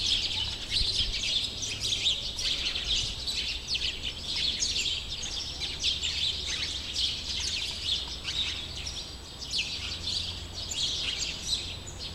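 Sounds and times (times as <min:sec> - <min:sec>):
several sparrows chirping: 0:00.0 - 0:12.1.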